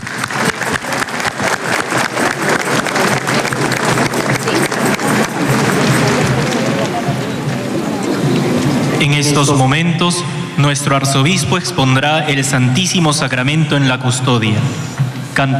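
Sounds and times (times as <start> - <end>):
large crowd applauding: 0.0 - 9.8
murmur of voices: 0.0 - 15.5
speech: 9.3 - 15.5.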